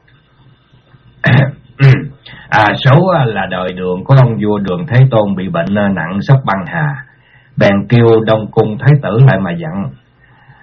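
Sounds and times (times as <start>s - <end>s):
man clearing his throat after sipping water: 1.2s - 2.4s
speech: 2.5s - 10.0s.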